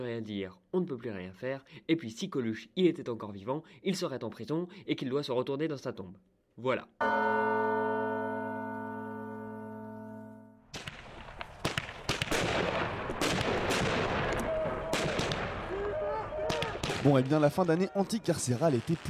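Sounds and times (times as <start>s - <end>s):
speech: 0.0s - 7.5s, 17.0s - 19.0s
sustained ringing tone: 7.0s - 10.7s
fireworks booming and crackling: 10.7s - 19.0s
whistling firework rockets rising: 10.8s - 17.5s.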